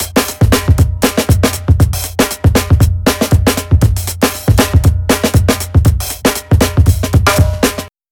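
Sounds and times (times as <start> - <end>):
clean drum loop: 0.0 - 7.9.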